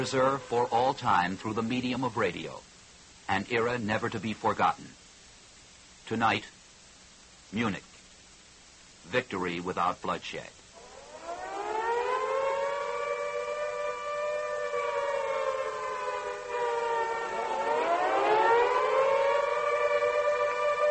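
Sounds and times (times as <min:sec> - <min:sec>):
Second World War civil defense air raid siren wailing: 0:00.0 - 0:01.3, 0:10.8 - 0:20.8
speech: 0:00.0 - 0:02.7, 0:03.3 - 0:05.0, 0:06.1 - 0:06.6, 0:07.5 - 0:07.9, 0:09.0 - 0:10.6.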